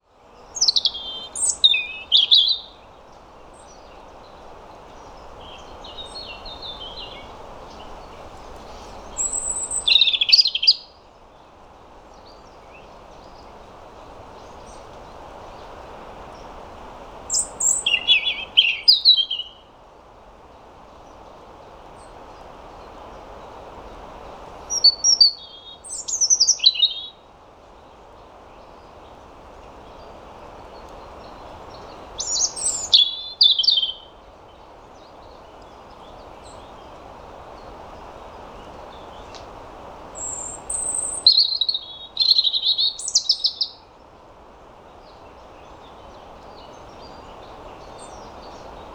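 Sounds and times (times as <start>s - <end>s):
European robin Erithacus rubecula singing: 0.3s - 11.0s, 17.3s - 19.7s, 24.7s - 27.2s, 28.5s - 39.5s, 40.1s - 44.0s, 44.8s - 48.9s.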